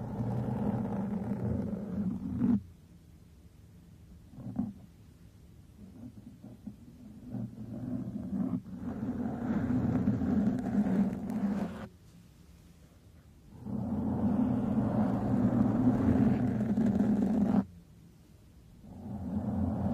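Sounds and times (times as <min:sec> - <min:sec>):
microphone brushing and scratching: 0:00.0 - 0:02.7, 0:04.3 - 0:04.9, 0:05.8 - 0:11.9, 0:13.6 - 0:17.7, 0:18.9 - 0:19.9.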